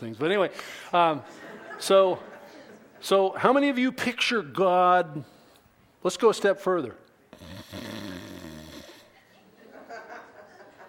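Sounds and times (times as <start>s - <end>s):
speech: 0.0s - 2.3s, 3.0s - 5.4s, 6.0s - 8.3s
laughter: 1.2s - 3.0s, 9.2s - 10.8s
person imitating a loud snore with their voice: 7.4s - 9.1s.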